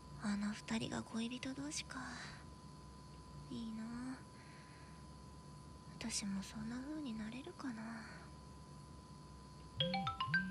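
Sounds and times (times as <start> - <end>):
speech: 0.2 - 2.4, 3.5 - 4.3, 6.0 - 8.3, 9.8 - 10.4
phone ringtone with bright electronic tones: 9.8 - 10.4.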